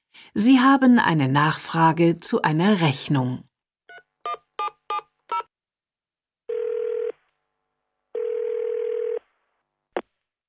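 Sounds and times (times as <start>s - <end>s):
speech: 0.3s - 3.5s
telephone ringback tones: 6.5s - 7.2s, 8.2s - 9.2s.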